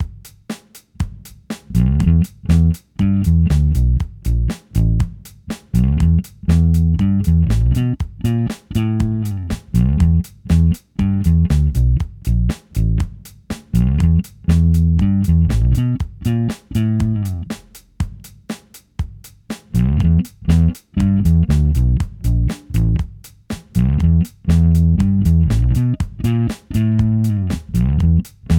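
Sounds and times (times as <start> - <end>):
drum loop: 0.0 - 28.5
bass guitar played finger style through tube overdrive and amp simulator: 1.7 - 5.1, 5.7 - 13.1, 13.8 - 17.5, 19.8 - 23.1, 23.8 - 28.5.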